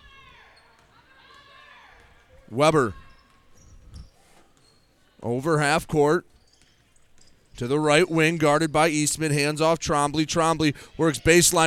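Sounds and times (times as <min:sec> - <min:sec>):
sneakers squeaking: 0:00.0 - 0:11.6
basketball bouncing on a hard gym floor during a high school game: 0:00.1 - 0:04.9, 0:05.8 - 0:09.2
speech: 0:02.5 - 0:03.0, 0:05.2 - 0:06.3, 0:07.6 - 0:11.6.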